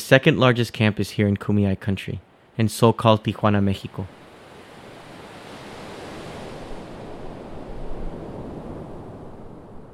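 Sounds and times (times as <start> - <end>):
speech: 0.1 - 4.2
Pacific Ocean surf breaking beside a border wall: 3.8 - 9.9
wind buffeting the microphone: 4.3 - 9.9.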